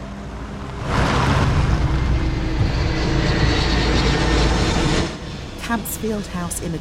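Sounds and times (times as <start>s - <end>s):
low-flying aeroplane passing overhead: 0.0s - 6.8s
speech: 5.7s - 6.8s.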